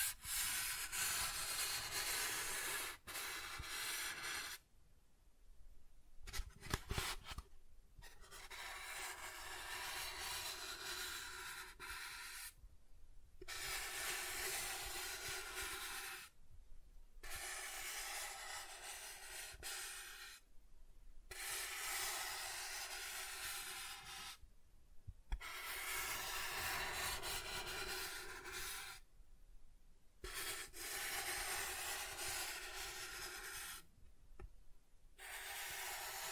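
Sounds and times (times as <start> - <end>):
soft tracing strokes across a surface: 0.0 - 4.6, 6.3 - 12.6, 13.4 - 16.4, 17.2 - 20.5, 21.3 - 24.4, 25.3 - 29.1, 30.2 - 33.9, 35.1 - 36.3.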